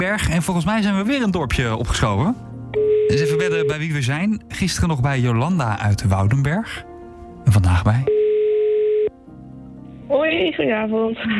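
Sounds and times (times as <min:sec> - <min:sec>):
speech: 0:00.0 - 0:08.2, 0:10.2 - 0:11.3
telephone line tone while a call is dialled: 0:02.8 - 0:03.8, 0:08.1 - 0:09.2.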